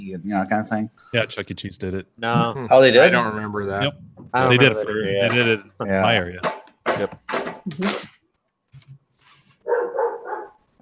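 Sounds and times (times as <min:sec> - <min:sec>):
speech: 0:00.0 - 0:08.1
dogs barking: 0:09.6 - 0:10.6.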